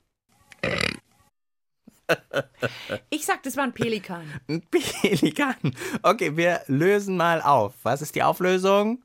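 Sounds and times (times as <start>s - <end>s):
dog burping: 0.6s - 1.0s
speech: 2.1s - 9.0s.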